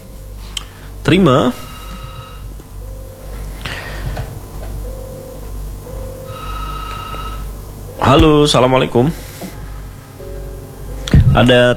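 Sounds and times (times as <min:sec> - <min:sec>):
speech: 0:01.1 - 0:01.7, 0:08.1 - 0:09.2, 0:11.4 - 0:11.7
electronic telephone ringing from an incoming call: 0:01.9 - 0:08.4.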